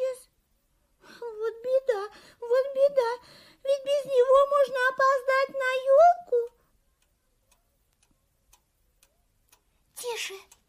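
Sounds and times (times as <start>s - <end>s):
alarm clock ticking quietly, muffled: 2.4s - 10.6s.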